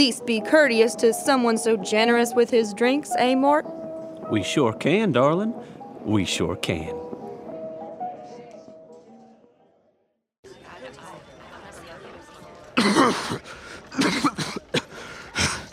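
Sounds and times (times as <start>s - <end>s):
speech: 0.0s - 7.0s, 12.8s - 14.8s
harsh coughing and throat clearing: 12.8s - 15.7s.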